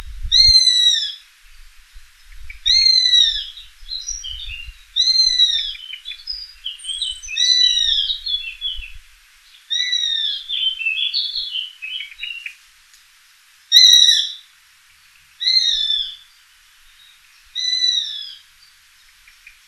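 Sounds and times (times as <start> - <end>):
Eurasian sparrowhawk Accipiter nisus calling: 2.2 - 12.6, 13.7 - 14.4, 15.4 - 18.4.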